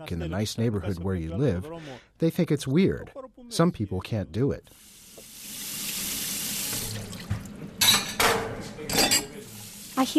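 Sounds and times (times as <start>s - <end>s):
speech: 0.0s - 4.9s, 10.0s - 10.1s
water running from a tap into a sink: 4.7s - 10.1s
dishes and cutlery clinking and clattering while washing: 6.9s - 9.5s.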